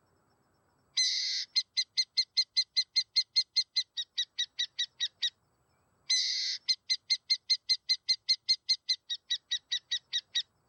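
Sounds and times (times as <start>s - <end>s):
burrowing owl calling: 1.0s - 5.4s, 6.1s - 10.5s.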